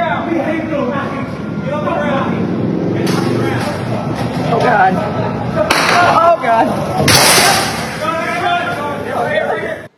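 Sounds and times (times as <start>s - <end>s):
indistinct voices and commotion: 0.0s - 9.9s
gunshots fired by a man at an apartment building: 7.0s - 8.0s.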